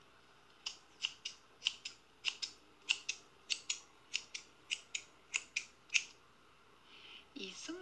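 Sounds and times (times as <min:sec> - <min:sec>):
scissors opening and closing: 0:00.6 - 0:06.1.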